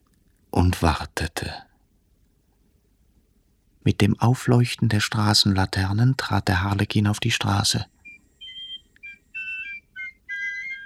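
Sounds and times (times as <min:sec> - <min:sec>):
speech: 0:00.7 - 0:01.7, 0:03.8 - 0:08.0
piccolo fife whistling a tune: 0:07.9 - 0:10.8.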